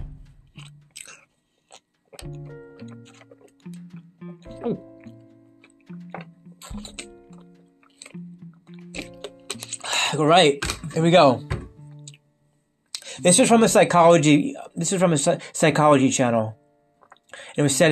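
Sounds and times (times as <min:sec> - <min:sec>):
person drinking water with wet gulps and swallows: 0:00.6 - 0:09.9, 0:17.0 - 0:17.4
small mouth clicks: 0:00.6 - 0:09.9
speech: 0:10.2 - 0:11.5, 0:13.2 - 0:16.6, 0:17.6 - 0:17.9.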